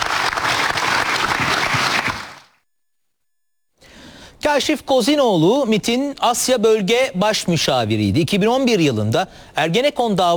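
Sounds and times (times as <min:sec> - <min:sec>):
loud crowd applause: 0:00.0 - 0:02.5
speech: 0:04.5 - 0:10.3.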